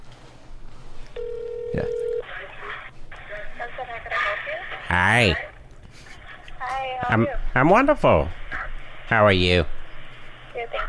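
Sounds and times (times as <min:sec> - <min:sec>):
electronic phone ring tone through a small phone speaker on speakerphone: 0:01.2 - 0:02.3
speech: 0:01.8 - 0:02.0, 0:04.9 - 0:05.5, 0:07.1 - 0:08.4, 0:09.1 - 0:09.8.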